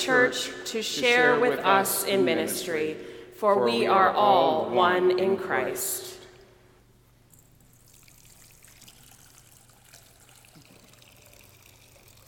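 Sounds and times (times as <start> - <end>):
speech: 0.0 - 6.1
water pouring into a baptismal font: 7.4 - 12.2.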